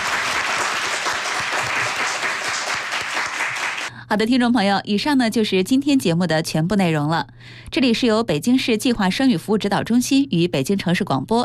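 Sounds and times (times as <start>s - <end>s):
audience applause at the close of a health talk: 0.0s - 3.9s
speech: 4.1s - 11.4s.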